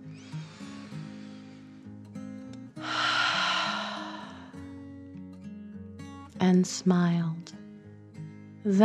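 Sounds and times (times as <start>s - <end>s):
slow deep calming breath during a bedtime relaxation exercise: 0.0s - 2.1s, 2.7s - 4.9s
soft steady music: 0.0s - 8.8s
speech: 6.4s - 7.6s, 8.6s - 8.8s.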